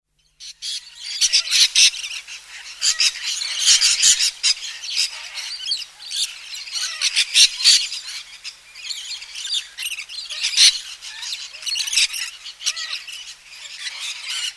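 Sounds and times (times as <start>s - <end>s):
little corella flock screeching: 0.7s - 7.9s, 10.3s - 14.5s.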